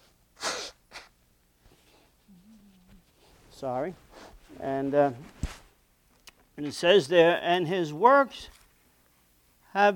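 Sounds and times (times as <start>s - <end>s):
nose blowing: 0.0s - 1.2s
faint low hum: 1.2s - 9.9s
speech: 3.6s - 5.4s, 6.6s - 8.6s, 9.8s - 9.9s.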